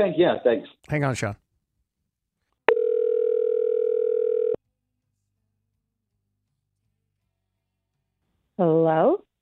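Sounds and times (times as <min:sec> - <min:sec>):
speech: 0:00.0 - 0:01.4, 0:08.6 - 0:09.3
electronic ringback tone of an outgoing phone call: 0:02.7 - 0:04.6.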